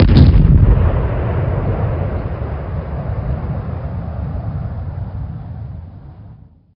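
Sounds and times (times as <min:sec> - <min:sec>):
distant sonic boom: 0:00.0 - 0:05.0.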